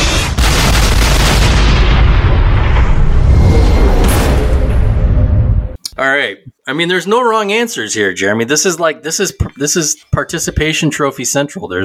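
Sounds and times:
gunfire from all of a battleship's weapons: 0.0s - 2.9s
heavy artillery explosions from a battleship: 0.0s - 5.8s
speech: 6.2s - 11.8s.

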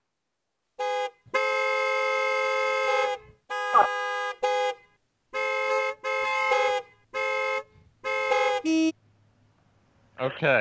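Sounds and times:
vehicle horn honking in a parking lot: 0.8s - 9.0s.

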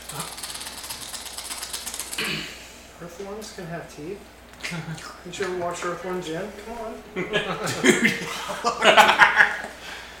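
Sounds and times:
dense rapid dry ratchet-like clicking: 0.0s - 2.3s
speech: 2.2s - 9.4s
laughter: 7.1s - 9.8s.

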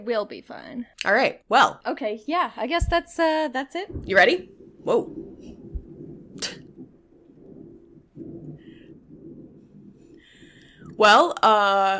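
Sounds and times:
speech: 0.0s - 5.5s, 6.4s - 6.6s, 11.0s - 11.9s
thunder rumbling during a rainstorm: 3.9s - 11.9s.

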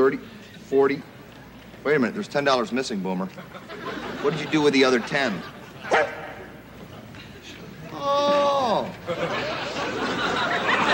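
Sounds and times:
speech: 0.0s - 1.1s, 1.8s - 6.2s
laughter: 3.3s - 10.9s
single sharp loud dog bark: 5.9s - 6.4s.

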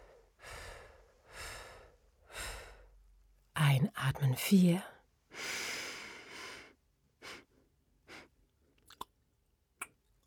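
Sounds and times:
slow deep breathing during a guided breathing exercise: 0.0s - 3.2s, 5.3s - 8.3s
speech: 3.8s - 4.9s.

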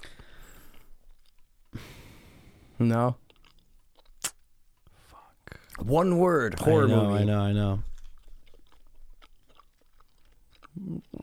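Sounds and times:
wet chewing of a fruit roll-up: 0.0s - 1.8s, 3.1s - 5.8s, 7.8s - 11.2s
speech: 2.8s - 3.2s, 5.8s - 7.9s.

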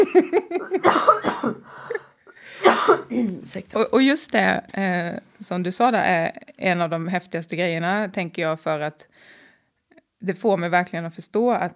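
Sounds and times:
speech: 0.1s - 1.1s, 3.6s - 9.4s, 10.2s - 11.7s
person coughing with harsh throaty coughs: 0.5s - 3.4s.

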